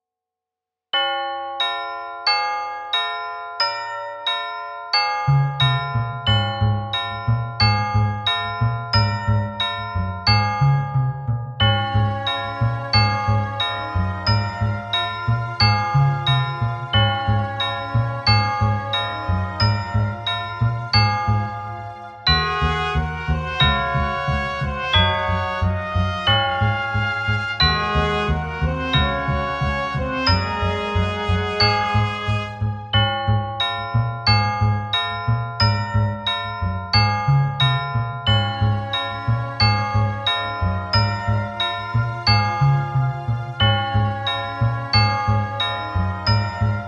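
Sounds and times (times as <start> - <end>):
holiday bells: 1.0 - 46.8.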